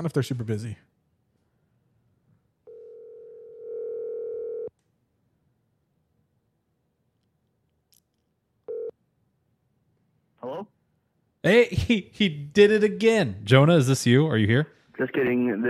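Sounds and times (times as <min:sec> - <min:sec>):
speech: 0:00.0 - 0:00.9, 0:11.4 - 0:15.6
phone ringback tone from an unanswered outgoing call: 0:02.7 - 0:04.7, 0:08.7 - 0:08.9.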